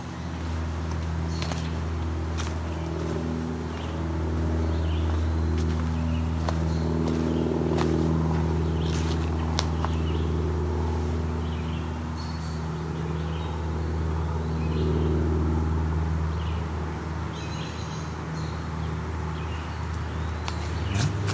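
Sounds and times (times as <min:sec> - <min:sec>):
airplanes flying overhead: 0:00.0 - 0:21.3.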